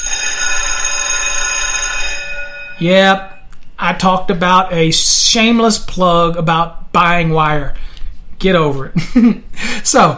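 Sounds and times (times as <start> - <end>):
alarm bell ringing: 0.0 - 3.5
speech: 2.8 - 7.8, 8.4 - 10.1.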